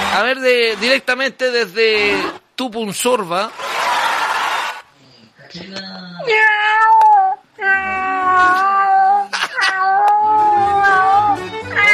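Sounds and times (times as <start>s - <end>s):
speech: 0.1s - 3.7s, 5.5s - 6.9s
skinny hairless cat yowling in caterwauls: 6.2s - 11.9s.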